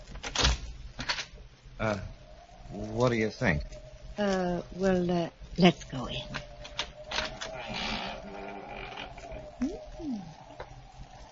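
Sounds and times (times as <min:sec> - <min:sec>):
speech: 0:01.8 - 0:06.4
unlocked door being opened with clunks and squeaky creak: 0:06.3 - 0:09.6.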